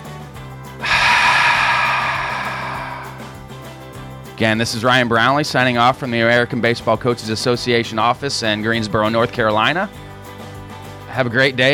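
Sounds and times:
big inhale through the nose during a breathing exercise: 0:00.8 - 0:03.5
speech: 0:04.4 - 0:10.0, 0:11.2 - 0:11.7.

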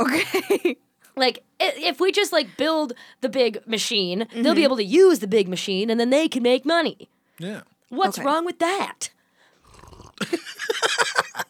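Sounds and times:
speech: 0:00.0 - 0:09.2, 0:10.2 - 0:11.4
slurping sip from a drink: 0:09.6 - 0:10.2.

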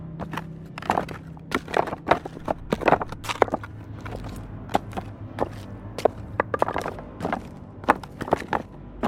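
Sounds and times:
low steady hum: 0:00.0 - 0:09.0
dragging shuffling footsteps: 0:00.2 - 0:09.0.

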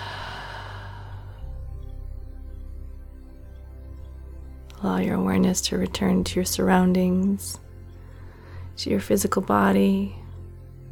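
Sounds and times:
deep breath in and out during a guided relaxation: 0:00.0 - 0:01.7, 0:08.0 - 0:08.8
steady low hum: 0:00.0 - 0:10.9
speech: 0:04.8 - 0:07.6, 0:08.8 - 0:10.2.

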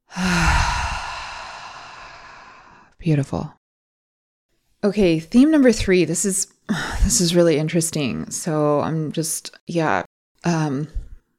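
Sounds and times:
deep breath in through nose and out of mouth: 0:00.0 - 0:03.0
speech: 0:03.0 - 0:03.6, 0:04.8 - 0:11.0.

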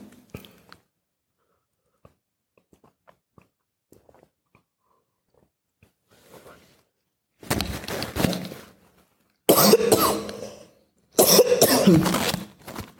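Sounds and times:
person coughing harshly in a coughing fit: 0:09.5 - 0:12.2.

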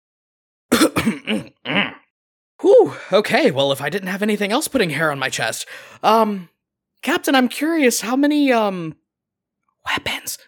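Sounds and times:
man coughing after a swig of drink: 0:00.7 - 0:02.0
speech: 0:01.0 - 0:01.8, 0:02.6 - 0:09.0, 0:09.8 - 0:10.4.

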